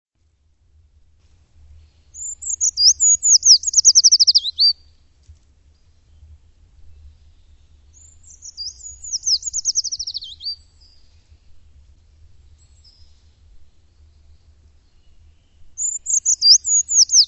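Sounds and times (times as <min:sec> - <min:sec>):
faint low rumble: 0:00.2 - 0:17.2
bird song of whistled notes ending in a falling trill: 0:01.8 - 0:05.1, 0:06.9 - 0:11.8, 0:12.4 - 0:17.2.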